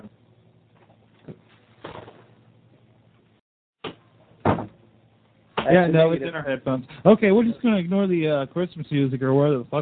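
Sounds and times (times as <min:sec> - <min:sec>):
steady low hum: 0:00.0 - 0:09.8
door being closed with thumps and knocks: 0:04.4 - 0:04.8
speech: 0:05.6 - 0:09.8.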